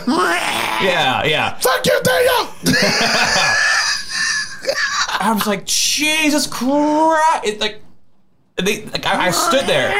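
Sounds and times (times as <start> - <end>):
person's voice mimicking two cats screeching at each other: 0.0 - 1.1, 9.1 - 9.9
speech: 0.0 - 3.7, 4.7 - 7.8, 8.6 - 9.9.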